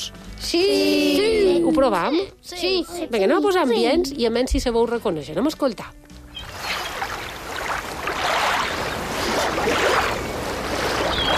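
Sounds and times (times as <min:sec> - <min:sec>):
speech: 0:00.5 - 0:01.0, 0:01.6 - 0:06.1
surf waves on a beach: 0:06.4 - 0:11.3.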